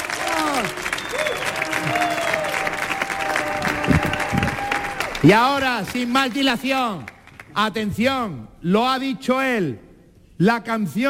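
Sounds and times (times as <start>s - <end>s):
scattered cheers and whoops: 0.0s - 5.3s
crowd applauding loudly: 0.0s - 7.6s
speech: 5.2s - 9.8s, 10.4s - 11.0s.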